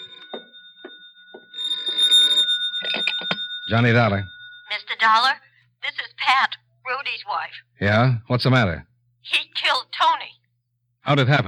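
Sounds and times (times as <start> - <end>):
telephone ringing: 0.0 - 6.2
speech: 3.7 - 5.4, 6.2 - 10.2, 11.1 - 11.4.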